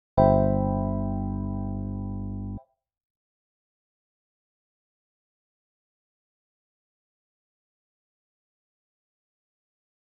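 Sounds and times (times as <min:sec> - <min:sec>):
C major seventh chord over G bass: 0:00.2 - 0:02.6.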